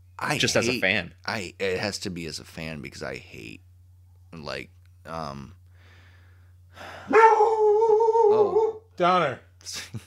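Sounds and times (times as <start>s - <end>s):
speech: 0.2s - 3.7s, 4.3s - 5.6s, 8.3s - 10.0s
dog barking at other dogs across the street: 7.1s - 8.8s.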